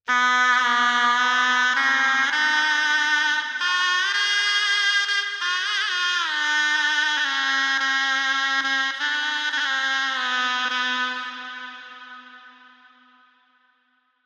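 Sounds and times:
shehnai melody in B minor: 0.1s - 13.7s.

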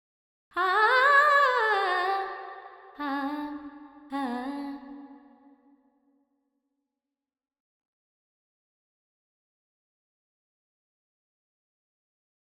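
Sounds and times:
female vocals with reverb: 0.6s - 5.6s.

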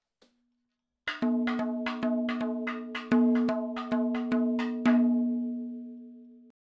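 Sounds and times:
madalam drum fills: 1.1s - 6.0s.

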